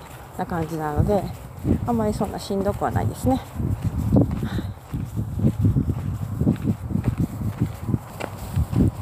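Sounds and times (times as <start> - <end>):
footsteps on unpaved sand and small stone path near the ruins of Ephesus: 0.0 - 9.0
speech: 0.4 - 4.0.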